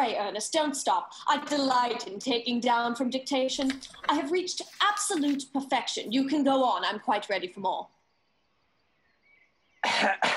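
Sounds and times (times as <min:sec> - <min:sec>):
speech: 0:00.0 - 0:08.0, 0:09.8 - 0:10.3
sharp loud coughs: 0:09.8 - 0:10.3.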